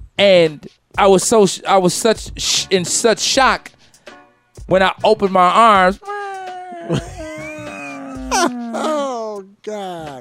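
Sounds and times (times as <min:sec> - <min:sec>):
speech: 0:00.2 - 0:03.8, 0:04.6 - 0:06.1, 0:06.9 - 0:07.1
human voice imitating a cat meow: 0:06.0 - 0:10.1
laughter: 0:06.2 - 0:09.4.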